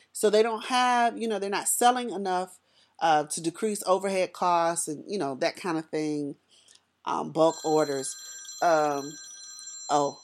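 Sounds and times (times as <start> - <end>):
speech: 0.2 - 6.4, 7.0 - 9.3, 9.9 - 10.2
faint steady high tone: 7.4 - 9.3
phone ringing in electronic bursts: 7.4 - 10.2.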